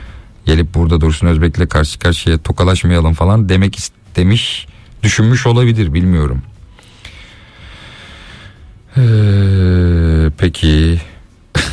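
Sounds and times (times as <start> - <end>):
speech: 0.5 - 6.5, 9.0 - 9.4, 10.4 - 11.1
person snoring: 7.0 - 10.2.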